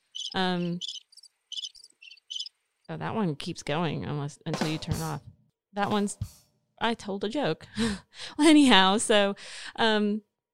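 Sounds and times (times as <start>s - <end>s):
crickets chirping: 0.0s - 2.5s
speech: 0.3s - 1.0s, 2.9s - 10.3s.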